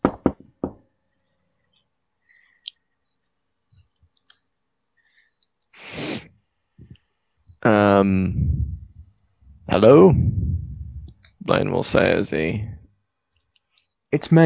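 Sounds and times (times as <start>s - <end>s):
light knocking on a door: 0.0s - 0.8s
speech: 7.6s - 8.6s, 9.7s - 10.4s, 11.5s - 12.8s, 14.1s - 14.4s.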